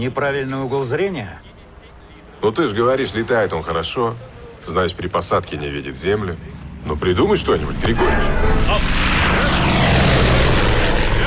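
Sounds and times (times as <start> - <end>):
speech: 0.0 - 1.5, 2.4 - 9.0
training airplane engine roaring while performing aerobatics in the sky: 6.0 - 11.2.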